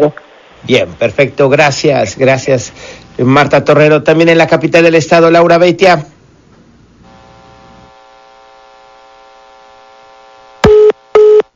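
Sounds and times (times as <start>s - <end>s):
speech: 0.0s - 6.1s
telephone busy tone beeps after a dropped call: 10.6s - 11.5s.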